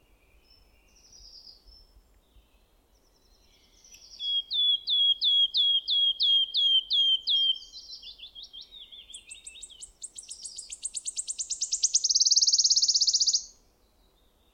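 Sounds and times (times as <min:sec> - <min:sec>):
wood warbler singing: 0:03.6 - 0:13.6.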